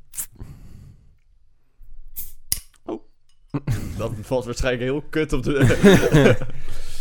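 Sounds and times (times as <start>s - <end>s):
beer bottle being opened: 0.0s - 0.3s
metallic clicks and scraping of the beer bottle cap: 0.0s - 0.3s, 2.2s - 3.5s
short hissing release of beer bottle: 0.0s - 0.4s
speech: 4.0s - 6.8s
laughter: 5.6s - 6.8s.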